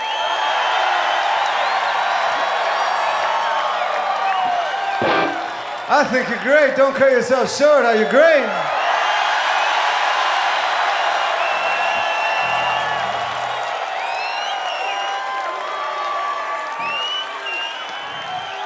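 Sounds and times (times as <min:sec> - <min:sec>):
high whoops: 0:00.0 - 0:05.5, 0:08.7 - 0:18.6
crowd whistles: 0:00.0 - 0:05.6, 0:11.3 - 0:15.4, 0:16.7 - 0:18.6
large live crowd in Seattle cheering: 0:00.0 - 0:18.6
steady applause: 0:00.0 - 0:18.6
speech: 0:05.9 - 0:08.8.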